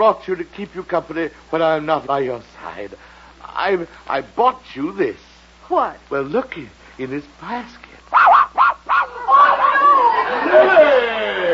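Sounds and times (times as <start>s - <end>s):
speech: 0.0s - 8.4s
small dog in a basket barking: 8.1s - 10.0s
laughter: 9.0s - 11.5s.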